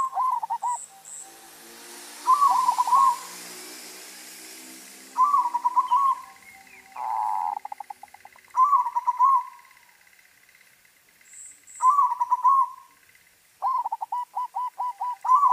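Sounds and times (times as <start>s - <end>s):
white zebra dove cooing in quick bursts: 0.0s - 1.6s, 2.2s - 3.4s, 5.2s - 10.0s, 11.8s - 13.0s, 13.6s - 15.5s
brief high chirps: 0.0s - 10.2s, 11.2s - 15.5s
faint steady hum: 0.0s - 15.5s.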